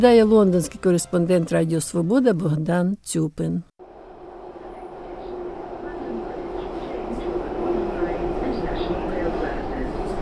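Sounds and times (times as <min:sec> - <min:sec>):
speech: 0:00.0 - 0:03.7
London Underground metro train rumbling through a tunnel: 0:03.8 - 0:10.1.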